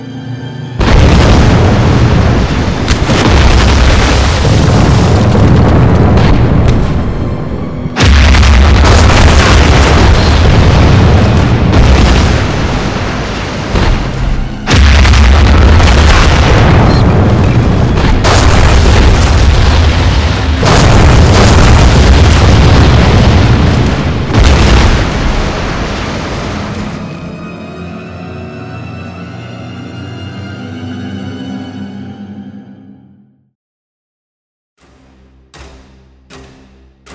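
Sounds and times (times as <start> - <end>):
artillery barrage shells exploding in overlapping booms: 0.8 - 27.0.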